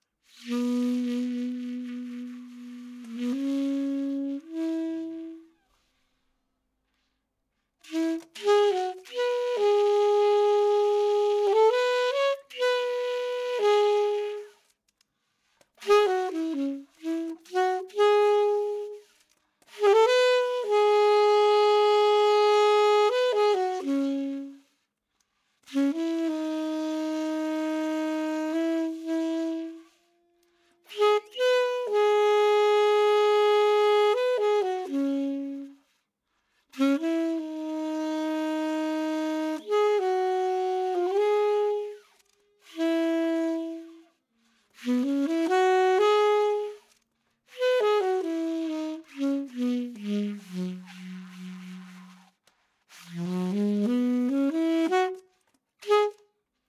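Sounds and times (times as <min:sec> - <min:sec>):
saxophone: 0:00.0 - 0:06.2, 0:07.7 - 0:56.6.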